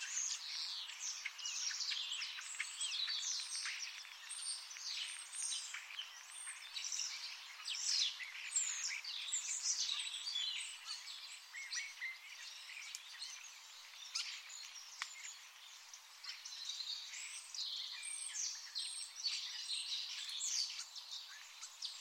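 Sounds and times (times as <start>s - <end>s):
bird chorus chirping and whistling: 0.0s - 21.9s.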